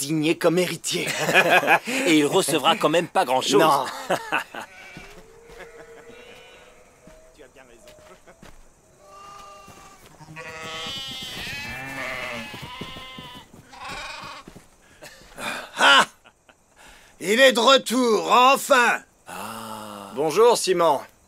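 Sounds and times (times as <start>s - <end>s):
speech: 0.0s - 4.8s, 17.2s - 19.4s, 20.2s - 21.1s
laughter: 0.9s - 4.7s, 5.4s - 6.4s, 15.0s - 16.7s
sheep bleating: 4.5s - 7.2s, 9.0s - 14.6s.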